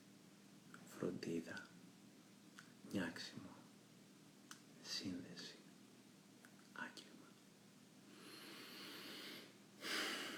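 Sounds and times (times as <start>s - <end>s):
speech: 1.0s - 1.8s, 2.9s - 3.6s, 4.9s - 5.6s
nasal inhale during a guided breathing exercise for self-forgiveness: 8.1s - 10.3s.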